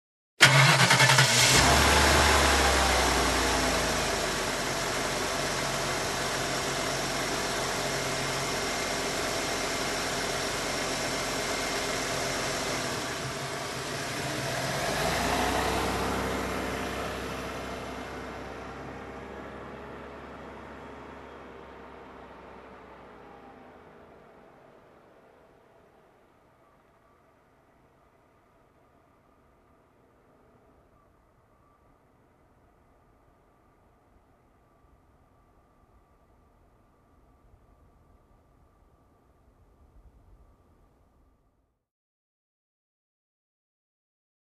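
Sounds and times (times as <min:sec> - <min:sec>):
truck engine starting and driving away: 0:00.4 - 0:26.4.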